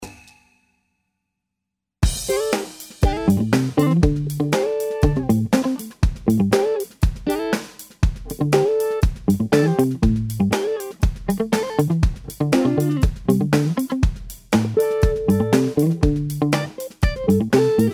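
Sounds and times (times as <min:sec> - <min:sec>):
guitar riff: 0:02.3 - 0:07.6, 0:08.3 - 0:14.0, 0:14.6 - 0:17.9.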